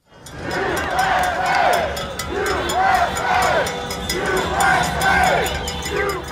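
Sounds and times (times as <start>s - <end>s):
large crowd of protesters chanting in unison while marching outdoors: 0.1s - 6.3s.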